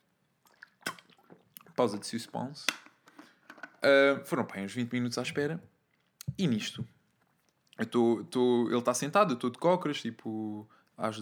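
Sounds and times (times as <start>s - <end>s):
person sipping water: 0.4s - 1.8s
soft wet mouth clicks: 0.4s - 1.8s
speech: 1.8s - 2.8s, 3.8s - 5.7s, 6.4s - 7.0s, 7.8s - 11.1s.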